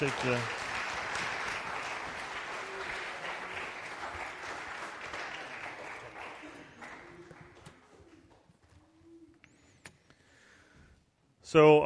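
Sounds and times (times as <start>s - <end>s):
speech: 0.0s - 0.6s, 11.5s - 11.8s
room full of people applauding: 0.0s - 8.4s.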